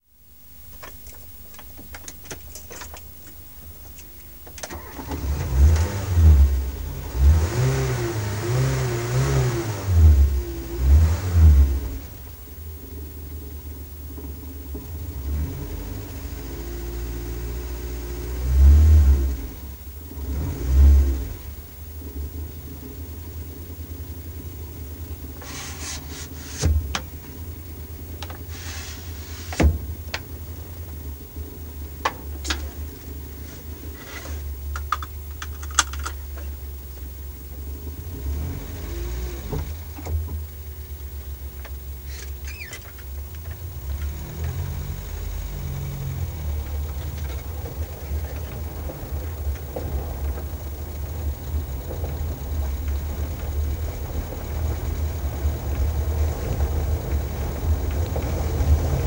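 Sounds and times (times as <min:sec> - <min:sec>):
Renault 4 car on gravel: 0:00.0 - 0:59.0.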